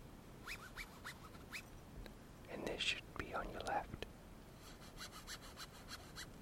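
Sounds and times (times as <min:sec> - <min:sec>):
scratching on taut tent fabric: 0:00.5 - 0:01.6, 0:04.6 - 0:06.3
speech: 0:02.8 - 0:04.0.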